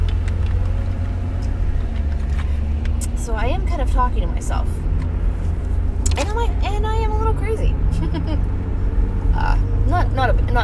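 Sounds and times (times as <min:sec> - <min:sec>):
low engine rumble inside a car while driving: 0:00.0 - 0:10.6
speech: 0:03.3 - 0:04.9, 0:09.4 - 0:10.6.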